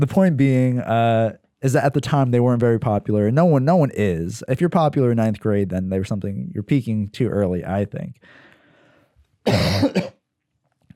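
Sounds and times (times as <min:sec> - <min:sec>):
speech: 0:00.0 - 0:08.4, 0:09.4 - 0:10.2
person clearing throat: 0:09.5 - 0:10.2.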